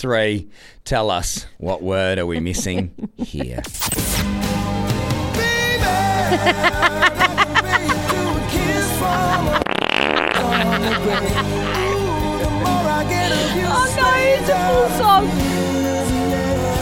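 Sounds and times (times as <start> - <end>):
speech: 0.0 - 4.6, 6.3 - 7.4, 10.8 - 11.8, 12.6 - 16.1
laughter: 1.8 - 3.9, 5.9 - 15.4
dense musical backing: 2.4 - 16.8
loud honking fart sound effects: 9.4 - 10.7.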